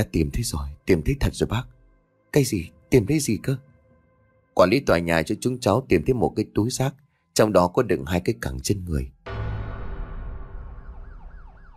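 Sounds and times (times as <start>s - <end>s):
speech: 0.0s - 3.7s, 4.6s - 9.2s
low rumble: 9.3s - 11.7s
police car siren wailing in front of an apartment building: 10.6s - 11.7s.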